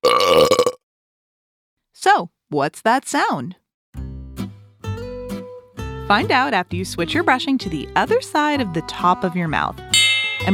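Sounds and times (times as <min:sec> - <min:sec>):
loud buzzy throaty belch: 0:00.0 - 0:00.8
speech: 0:02.0 - 0:03.6, 0:06.1 - 0:10.5.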